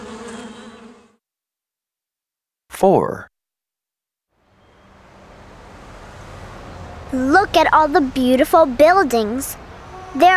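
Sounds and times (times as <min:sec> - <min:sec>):
honeybees buzzing: 0:00.0 - 0:01.2
speech: 0:02.8 - 0:03.3, 0:07.1 - 0:10.3.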